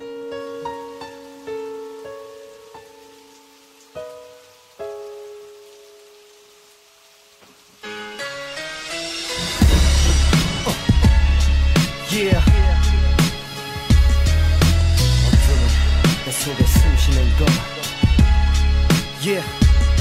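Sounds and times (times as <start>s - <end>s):
quiet sustained orchestral chords: 8.9s - 13.2s
crashing hits at a steady pulse: 9.1s - 13.4s
thick strings: 9.2s - 13.4s
booming bass beats in a symphonic hip-hop intro: 9.3s - 19.9s.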